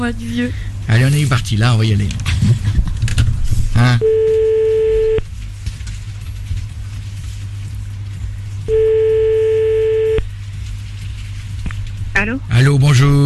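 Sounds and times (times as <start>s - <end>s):
speech: 0.0s - 2.9s, 3.8s - 4.4s, 12.2s - 13.2s
constant low hum: 2.1s - 12.5s
telephone ringing tone while placing a call: 4.0s - 5.2s, 8.7s - 10.2s.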